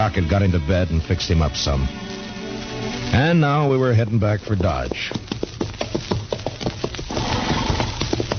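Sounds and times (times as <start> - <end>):
speech: 0.0 - 2.2, 3.1 - 5.3
horse hooves stomping in the dust: 3.2 - 8.3
horse snorting or whinnying: 7.1 - 8.0.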